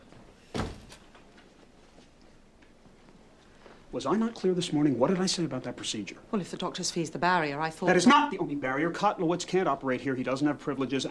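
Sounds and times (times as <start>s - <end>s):
door swinging shut with a solid thud: 0.5s - 1.0s
speech: 3.9s - 11.0s.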